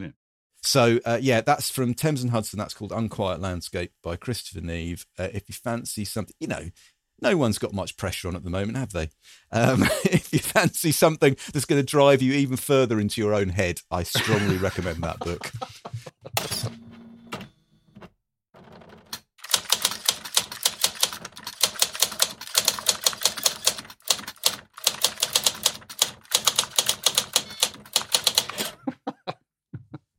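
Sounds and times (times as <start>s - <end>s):
speech: 0.0s - 16.8s
laughter: 9.6s - 10.8s, 14.1s - 16.8s, 28.7s - 30.1s
1980s Olivetti electric typewriter typing: 18.6s - 28.8s.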